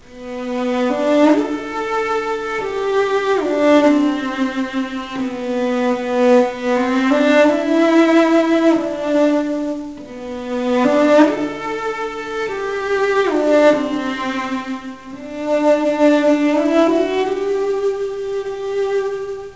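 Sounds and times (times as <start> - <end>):
cello melody: 0.0 - 19.5.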